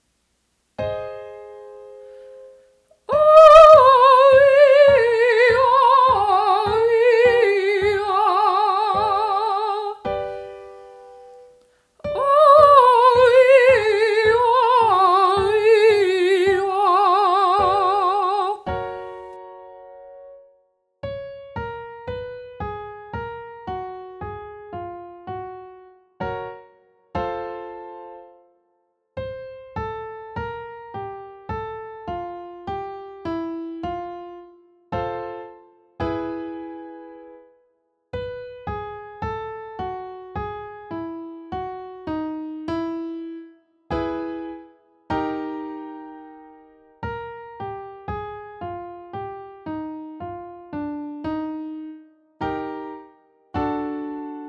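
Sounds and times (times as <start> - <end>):
person singing descending oh eh vocal exercises: 3.0 - 10.1, 12.0 - 18.7.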